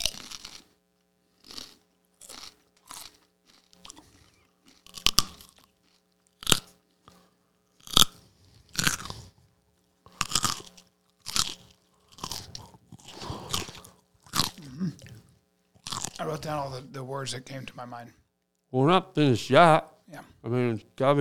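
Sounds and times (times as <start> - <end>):
crunching and chewing raw carrots into microphone: 0.0 - 16.4
speech: 16.3 - 21.1.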